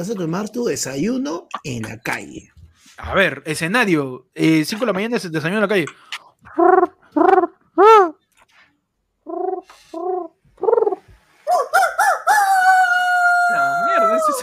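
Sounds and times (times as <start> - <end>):
speech: 0.0 - 8.1
rooster crowing: 11.4 - 14.4.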